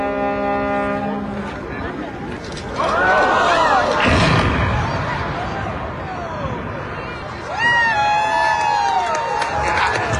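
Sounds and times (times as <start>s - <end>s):
long horn blast: 0.0s - 2.0s
crowd cheering, shouting and whistling: 2.8s - 10.1s
bridge demolition collapse boom and crash: 3.8s - 7.4s.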